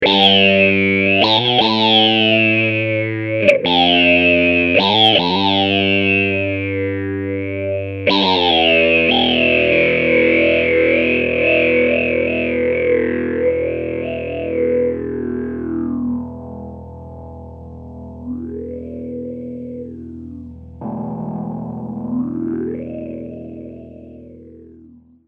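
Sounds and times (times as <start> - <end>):
bass legato: 0.0 - 25.2.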